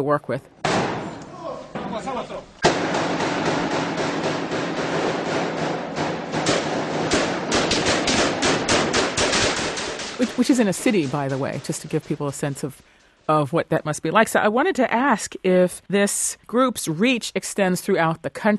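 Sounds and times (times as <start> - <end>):
speech: 0.0 - 0.6, 1.9 - 4.0, 10.2 - 18.5
gunfire exchange between cartel and military: 0.6 - 1.2, 2.6 - 12.7.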